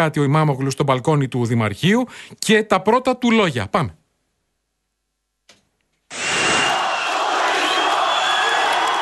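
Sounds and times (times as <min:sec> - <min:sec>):
speech: 0:00.0 - 0:04.0
massive crowd of supporters roaring and cheering outdoors: 0:06.1 - 0:09.0
supporters shouting: 0:06.1 - 0:09.0.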